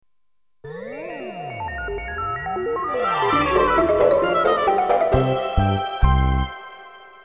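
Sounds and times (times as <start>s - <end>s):
dance music: 2.2s - 6.4s.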